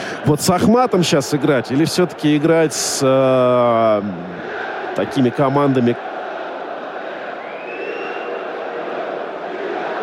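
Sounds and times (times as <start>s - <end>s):
stadium crowd of football fans chanting and roaring: 0.0s - 10.0s
speech: 0.2s - 6.1s
faint rising whistle: 7.4s - 8.5s.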